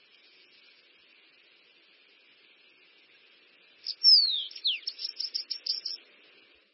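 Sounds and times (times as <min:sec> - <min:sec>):
Bananaquit singing a sharp descending whistle and buzzy chips: 0:03.8 - 0:06.0.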